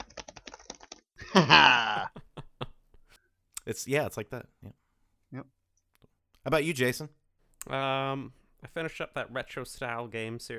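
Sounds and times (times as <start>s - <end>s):
typing on a computer keyboard: 0.0s - 1.0s
laughter: 1.2s - 2.9s
speech: 1.4s - 1.9s, 3.7s - 4.6s, 5.3s - 5.5s, 6.4s - 10.5s
loud drawn-out groaning moan: 1.5s - 2.1s.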